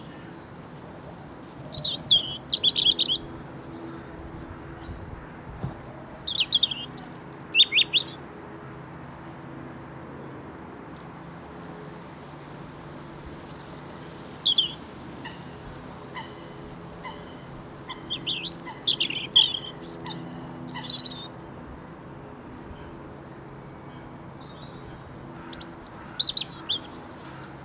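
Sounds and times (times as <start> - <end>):
robin singing: 0.0 - 5.2, 6.2 - 8.2, 13.1 - 15.4, 16.1 - 27.0.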